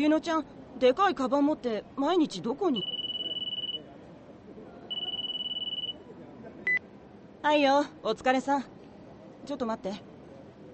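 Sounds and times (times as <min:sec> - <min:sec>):
speech: 0:00.0 - 0:03.0, 0:07.4 - 0:08.8, 0:09.4 - 0:10.1
low murmur: 0:00.0 - 0:10.7
mobile phone incoming-call ringtone trill: 0:02.8 - 0:03.8, 0:04.9 - 0:06.0.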